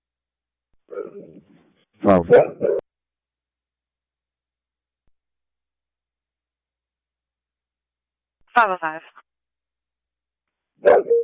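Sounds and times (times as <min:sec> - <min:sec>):
dog giving short sharp barks: 0:00.9 - 0:01.4, 0:02.1 - 0:02.8, 0:10.8 - 0:11.2
speech: 0:01.0 - 0:02.8, 0:08.6 - 0:09.2.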